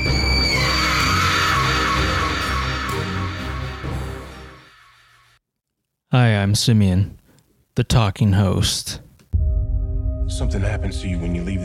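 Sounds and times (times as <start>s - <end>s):
sinister scream: 0.0s - 5.4s
speech: 6.1s - 7.2s, 7.8s - 9.0s, 10.3s - 11.6s.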